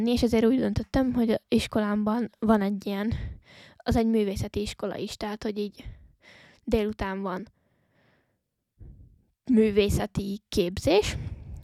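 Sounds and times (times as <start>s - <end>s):
speech: 0.0s - 7.6s, 9.5s - 11.4s
person breathing heavily into a microphone: 3.1s - 3.8s, 5.8s - 6.6s, 7.6s - 9.2s, 11.1s - 11.6s.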